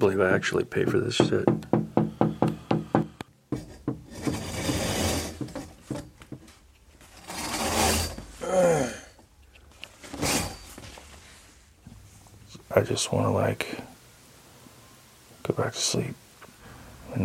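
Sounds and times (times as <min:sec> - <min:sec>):
speech: 0:00.0 - 0:01.7, 0:12.8 - 0:13.9, 0:15.7 - 0:16.2
stick tapping lightly on window glass: 0:00.8 - 0:04.1
rustling: 0:03.5 - 0:08.4, 0:09.4 - 0:12.7
scraping: 0:03.5 - 0:08.4, 0:09.9 - 0:11.6.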